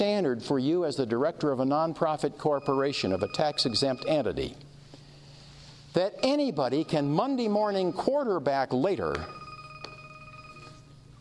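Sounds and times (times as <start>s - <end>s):
speech: 0.0s - 4.7s, 6.0s - 9.4s
phone ringing with a steady electronic tone: 2.6s - 4.5s, 6.2s - 10.9s.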